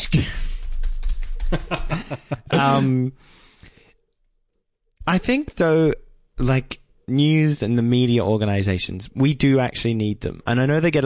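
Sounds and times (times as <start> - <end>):
fingers typing on a computer keyboard: 0.4 - 2.0
person chuckling: 1.5 - 3.1
speech: 1.5 - 3.3, 5.1 - 11.0.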